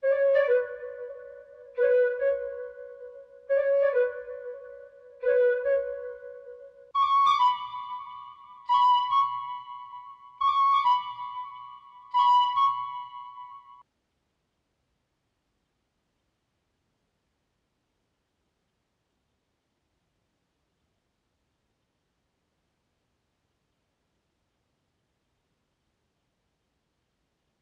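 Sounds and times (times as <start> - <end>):
flute melody loop in B minor for trap: 0.0 - 13.8.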